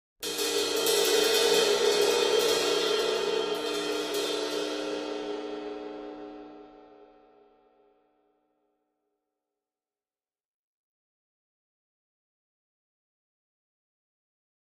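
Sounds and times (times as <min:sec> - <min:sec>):
large drum kit cymbal trill: 0:00.2 - 0:07.3.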